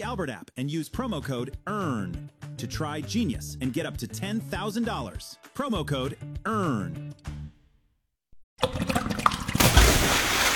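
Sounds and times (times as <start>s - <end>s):
speech: 0.1s - 7.4s
water gushing and trickling: 8.6s - 10.5s.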